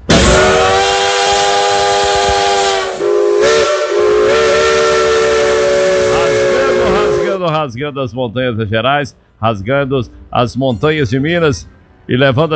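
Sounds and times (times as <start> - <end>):
steam locomotive whistle: 0.0 - 7.4
speech: 7.5 - 12.5.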